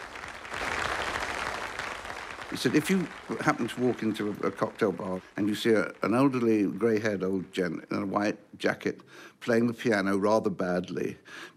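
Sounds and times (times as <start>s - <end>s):
audience applauding after band finishes: 0.0s - 8.1s
speech: 2.5s - 11.5s.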